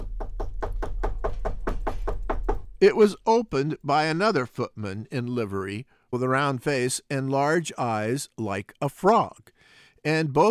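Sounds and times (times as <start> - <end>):
knuckles rapping loudly on a door: 0.0 - 2.8
speech: 2.8 - 10.4.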